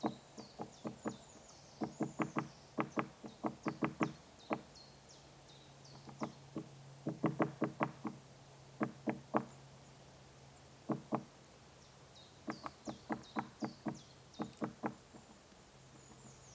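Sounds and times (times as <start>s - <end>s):
great spotted woodpecker pecking at a tree trunk: 0.0s - 4.7s, 5.9s - 8.2s, 8.8s - 9.6s, 10.8s - 11.3s, 12.4s - 16.4s.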